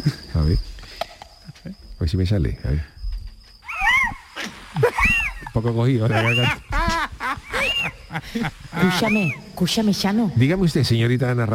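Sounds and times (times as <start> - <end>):
speech: 0.0 - 0.9, 1.6 - 3.0, 5.6 - 6.7, 8.1 - 11.5
laughter: 4.4 - 9.5
person imitating a barn owl call: 6.1 - 8.2, 8.8 - 9.5.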